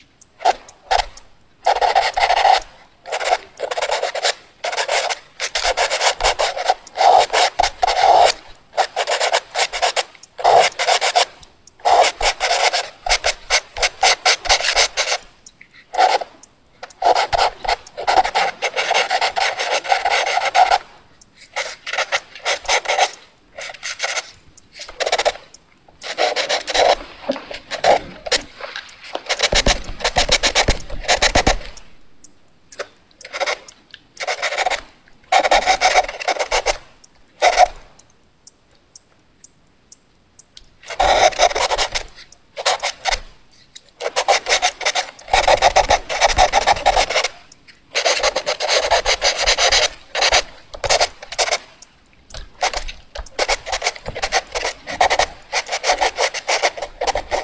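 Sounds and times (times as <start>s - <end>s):
fast drawing: 0.4s - 32.0s, 33.3s - 37.8s, 40.9s - 43.3s, 44.0s - 57.4s.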